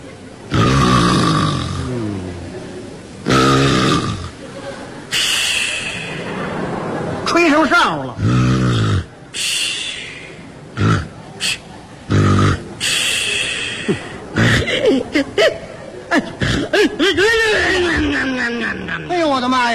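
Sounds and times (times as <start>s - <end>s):
person imitating loud snoring: 0.5s - 2.4s, 3.3s - 4.3s, 8.2s - 9.1s, 10.8s - 11.1s, 12.1s - 13.0s
laughter: 4.1s - 8.1s, 10.6s - 19.4s.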